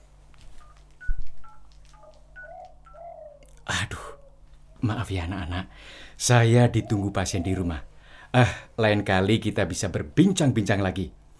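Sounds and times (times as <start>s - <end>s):
mobile phone SMS alert electronic beeps: 0.6s - 3.0s
speech: 4.8s - 11.2s.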